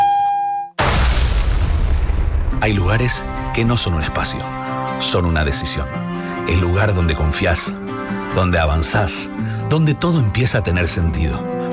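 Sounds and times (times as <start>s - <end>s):
steady high tone: 0.0s - 0.8s
thrown bomb exploding: 0.8s - 4.6s
speech: 2.6s - 11.7s.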